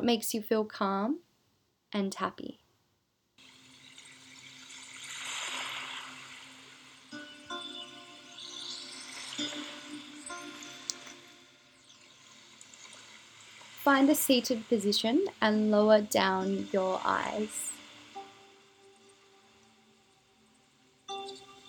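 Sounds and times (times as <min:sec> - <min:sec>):
speech: 0:00.0 - 0:01.3, 0:01.9 - 0:02.6, 0:13.8 - 0:17.7
water flowing from a diffuser: 0:03.4 - 0:21.6.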